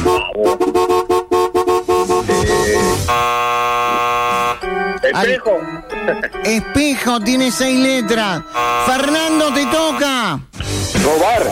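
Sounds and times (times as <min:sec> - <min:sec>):
horn honking: 0:00.0 - 0:05.4, 0:07.5 - 0:10.4
speech: 0:05.2 - 0:11.5.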